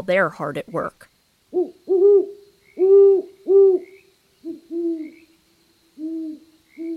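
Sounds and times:
speech: 0.0 - 3.8
great horned owl hooting in a city neighborhood: 1.5 - 6.9.

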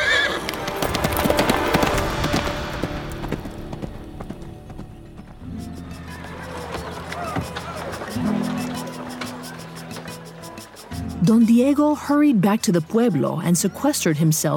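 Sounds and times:
horse whinnying: 0.0 - 0.9
horse hooves galloping: 0.0 - 11.7
speech: 11.3 - 14.5.

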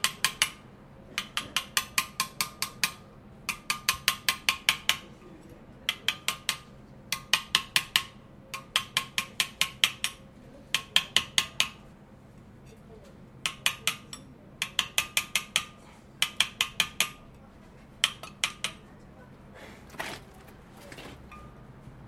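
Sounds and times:
chisel struck carving stone in a courtyard workshop: 0.0 - 5.1, 5.8 - 11.8, 13.4 - 17.4, 18.0 - 18.9
low hum of workshop background: 0.0 - 22.0.

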